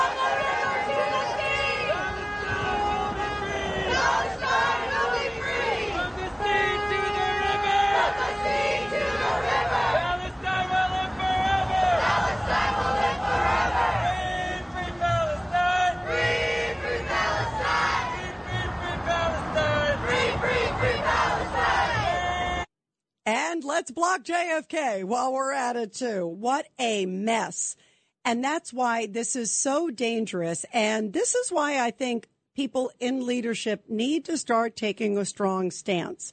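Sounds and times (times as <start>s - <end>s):
large crowd of protesters chanting in unison: 0.0s - 22.7s
speech: 23.8s - 36.3s.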